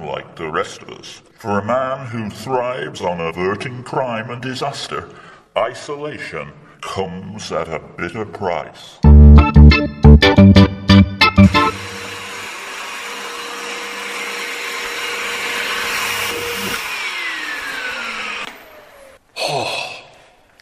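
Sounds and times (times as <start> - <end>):
speech: 0.1 - 10.7
quick rhythmic thumps: 9.0 - 12.0
vacuum cleaner hoovering a dusty place: 11.5 - 19.2.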